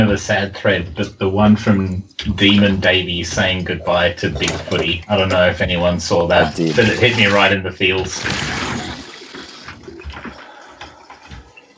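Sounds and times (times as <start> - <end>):
speech: 0.1 - 8.6
water gushing and gurgling as it is emptied from a jug: 8.1 - 11.7.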